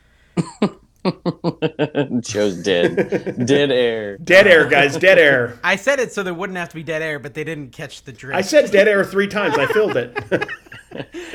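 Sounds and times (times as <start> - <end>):
person coughing harshly: 0.4 - 0.8
laughter: 0.4 - 5.8, 8.4 - 11.3
speech: 1.2 - 11.3.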